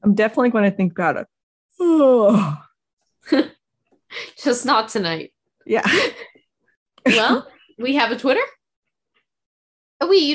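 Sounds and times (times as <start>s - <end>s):
speech: 0.0s - 2.6s, 3.2s - 6.3s, 7.0s - 8.6s, 10.0s - 10.3s
person yawning: 1.8s - 2.8s.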